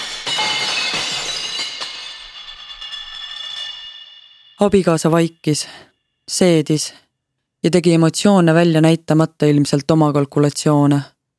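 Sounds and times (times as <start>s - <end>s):
dish cupboard contents shattering against a white wall: 0.0s - 2.6s
bright ringing shards and tinkling fragments: 0.0s - 5.0s
speech: 4.6s - 7.0s, 7.6s - 11.1s.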